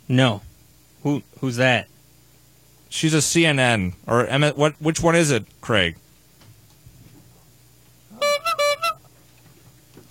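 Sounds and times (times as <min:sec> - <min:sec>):
speech: 0:00.1 - 0:01.9, 0:02.9 - 0:06.0
horn honking: 0:08.1 - 0:09.0.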